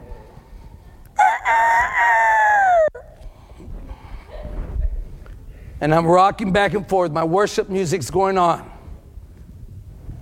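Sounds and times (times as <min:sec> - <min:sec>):
quiet outdoor noise with faint activity: 0:00.0 - 0:10.2
rooster crowing on a ranch: 0:01.2 - 0:03.0
speech: 0:05.8 - 0:08.7.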